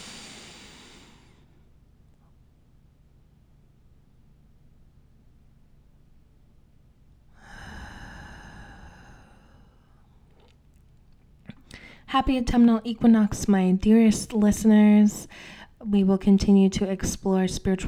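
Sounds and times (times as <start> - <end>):
deep breath drawn in during a guided breathing exercise: 0.0 - 1.5, 7.4 - 10.0, 15.3 - 15.7
speech: 12.1 - 17.8.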